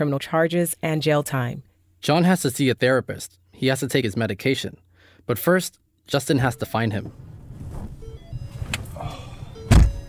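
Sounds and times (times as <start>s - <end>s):
speech: 0.0s - 7.4s
soft rustling of someone climbing into a car: 7.0s - 9.0s
car door shutting with heavy thunk: 7.0s - 10.0s.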